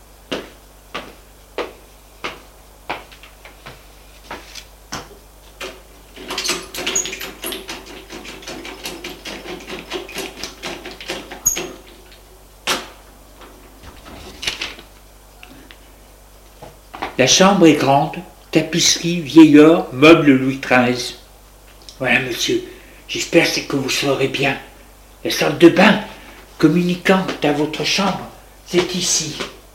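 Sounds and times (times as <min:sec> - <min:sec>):
door being opened: 0:06.2 - 0:12.0
speech: 0:17.2 - 0:21.2, 0:22.0 - 0:24.6, 0:25.2 - 0:29.6.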